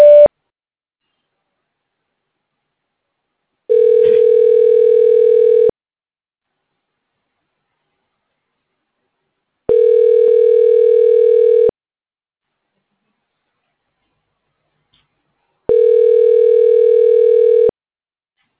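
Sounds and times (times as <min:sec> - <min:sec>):
buzzy phone-line tone from a call prompt: 0:00.0 - 0:00.3, 0:03.7 - 0:05.7, 0:09.7 - 0:11.7, 0:15.7 - 0:17.7.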